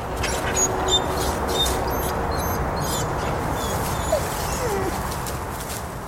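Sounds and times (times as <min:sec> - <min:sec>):
stressed wolf whimpering: 0:00.2 - 0:05.0.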